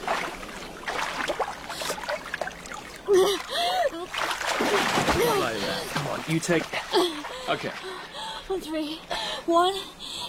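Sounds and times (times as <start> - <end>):
sea water splashing against the shore: 0.0 - 8.0
speech: 6.2 - 10.0.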